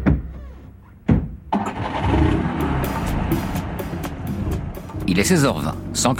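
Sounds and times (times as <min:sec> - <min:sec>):
sharp clunks: 0:00.1 - 0:01.8
Renault R5 car engine cranking, catching and idling: 0:00.2 - 0:06.1
speech: 0:05.1 - 0:06.1.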